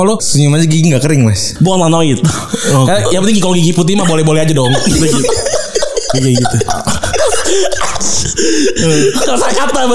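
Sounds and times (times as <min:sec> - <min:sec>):
speech: 0:00.0 - 0:09.9
laughter: 0:02.2 - 0:09.9
loud rough throaty coughing: 0:05.9 - 0:09.4.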